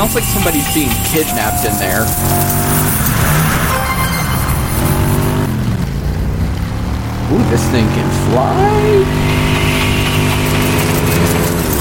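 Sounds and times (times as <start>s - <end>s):
speech: 0.1s - 3.8s, 7.3s - 9.4s
car engines roaring past in a racing video game: 4.4s - 11.8s.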